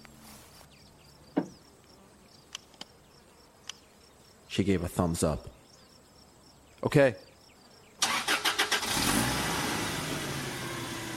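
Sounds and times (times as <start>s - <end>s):
speech: 4.6s - 5.6s, 6.8s - 7.3s
van engine cranking and revving while jump-started by cables from a car: 8.0s - 11.1s.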